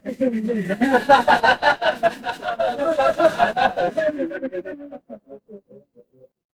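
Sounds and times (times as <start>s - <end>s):
crowd laughter: 0.4s - 4.4s.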